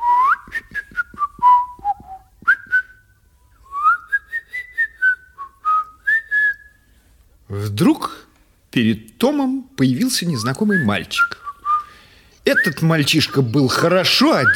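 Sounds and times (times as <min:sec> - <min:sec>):
person whistling a short melody: 0:00.0 - 0:06.8, 0:10.4 - 0:12.0
speech: 0:07.8 - 0:08.2, 0:08.8 - 0:11.4, 0:12.5 - 0:14.5.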